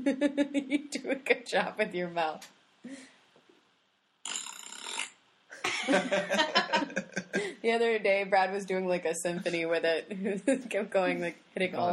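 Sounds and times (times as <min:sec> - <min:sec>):
speech: 0:00.0 - 0:03.1, 0:05.8 - 0:11.9
loud raspy fart noises: 0:04.2 - 0:05.2
laughter: 0:05.6 - 0:07.6.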